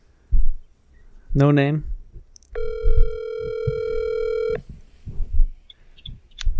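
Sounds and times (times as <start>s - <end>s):
speech: 1.3s - 1.9s
phone line ringing tone while placing a call: 2.6s - 4.6s.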